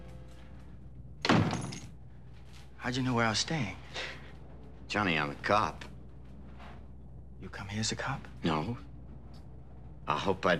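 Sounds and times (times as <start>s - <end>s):
door thudding shut: 1.2s - 1.8s
speech: 2.8s - 3.8s, 4.9s - 5.9s, 7.4s - 8.9s, 10.1s - 10.5s.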